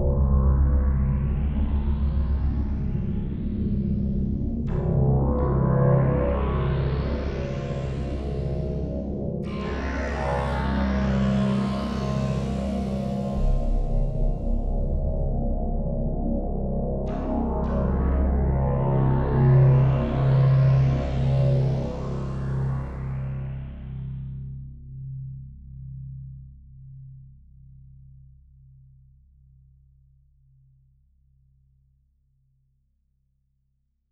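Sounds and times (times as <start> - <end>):
Roland JU-06 synthesizer drone: 0.2 - 24.3.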